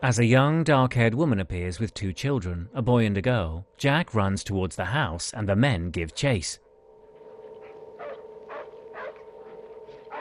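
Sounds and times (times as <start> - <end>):
speech: 0.0 - 6.6
steady low humming drone: 0.0 - 10.2
dog barking: 8.0 - 9.2.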